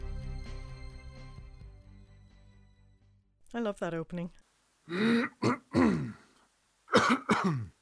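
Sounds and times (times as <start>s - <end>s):
speech: 3.5s - 6.2s, 7.1s - 7.8s
short gruff coughs: 4.9s - 6.2s, 6.9s - 7.8s
person clearing throat: 4.9s - 6.3s, 6.9s - 7.8s.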